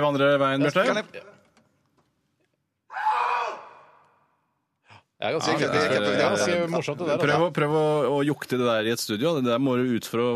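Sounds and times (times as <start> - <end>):
speech: 0.0 - 1.4, 5.2 - 10.3
person shouting in a backyard: 2.9 - 4.0.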